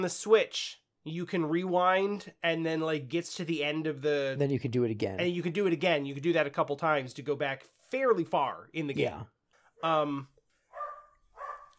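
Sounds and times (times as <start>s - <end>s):
speech: 0.0s - 10.3s
dog barking: 10.7s - 11.7s.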